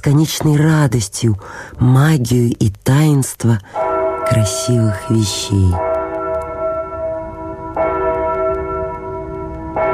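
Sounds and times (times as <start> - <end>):
speech: 0.0 - 5.9
tower clock bell striking midnight: 3.7 - 9.9.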